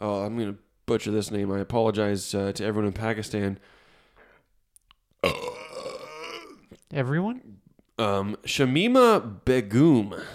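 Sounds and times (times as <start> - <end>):
speech: 0.0 - 3.8, 6.9 - 10.3
loud drawn-out burp: 5.2 - 6.9.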